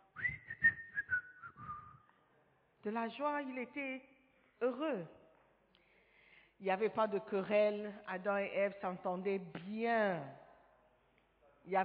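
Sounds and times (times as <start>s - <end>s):
person whistling a short cheerful tune: 0.0s - 2.1s
speech: 2.8s - 5.2s, 6.6s - 10.4s, 11.6s - 11.8s.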